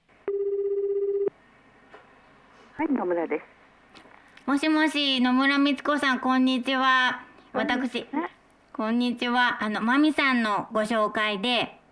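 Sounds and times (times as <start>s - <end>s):
telephone ringing tone on an outgoing call: 0.2s - 1.3s
speech: 2.8s - 3.6s, 4.5s - 11.8s.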